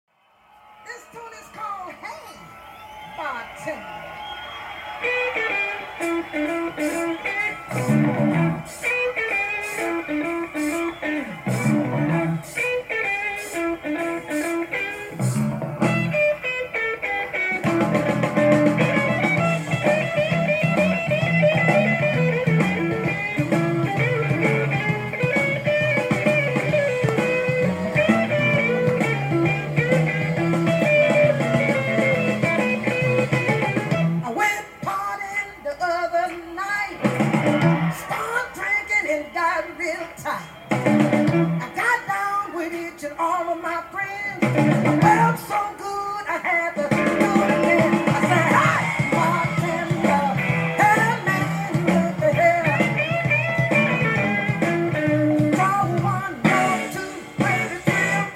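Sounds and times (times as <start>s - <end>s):
blues music: 0.2s - 58.3s.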